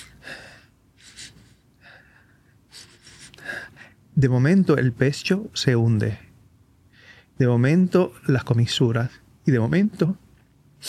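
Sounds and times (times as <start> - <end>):
person demonstrating sharp shaky inhales of sadness: 0.0 - 4.0
speech: 4.2 - 6.3, 7.4 - 10.2.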